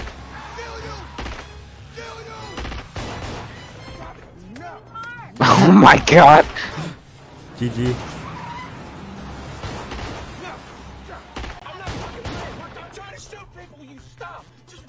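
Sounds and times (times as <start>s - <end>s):
scattered sharp gunshots: 0.0s - 4.2s, 7.7s - 13.3s
steady low rumble of cars driving past: 3.6s - 11.6s
speech: 5.6s - 6.7s, 7.6s - 8.1s.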